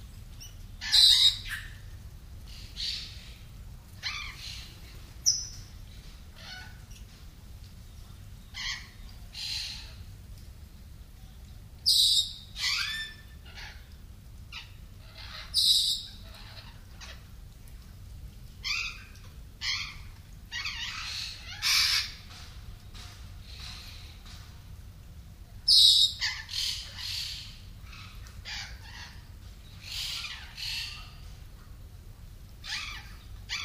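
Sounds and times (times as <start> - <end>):
low steady rumble: 0.0 - 33.6
birds chirping and squawking: 0.4 - 7.2, 8.4 - 10.1, 11.9 - 17.3, 18.5 - 24.8, 25.7 - 31.4, 32.6 - 33.6.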